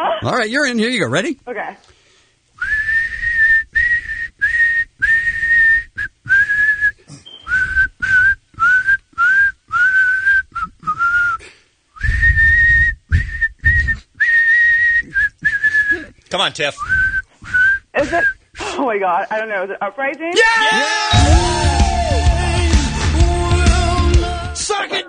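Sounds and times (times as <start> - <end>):
speech: 0.2 - 2.0, 16.4 - 17.0, 18.0 - 21.7
person whistling a song melody: 2.6 - 11.4, 12.0 - 16.1, 21.1 - 24.2.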